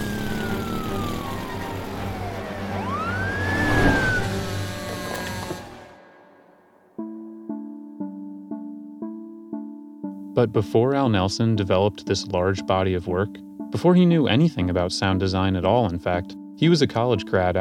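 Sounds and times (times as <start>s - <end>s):
car engine roaring at full throttle: 0.0s - 6.5s
speech: 10.4s - 17.5s.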